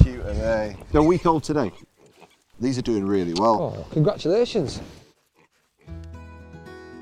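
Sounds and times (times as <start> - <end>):
week-old piglets grunting while suckling: 0.0 - 4.0
speech: 0.4 - 1.9, 2.6 - 5.0.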